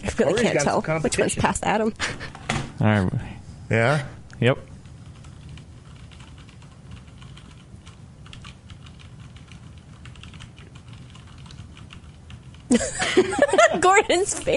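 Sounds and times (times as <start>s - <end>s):
speech: 0.2s - 4.7s, 14.0s - 14.5s
blindfolded typist typing rapidly on a computer keyboard: 5.1s - 12.7s
laughter: 12.7s - 14.5s.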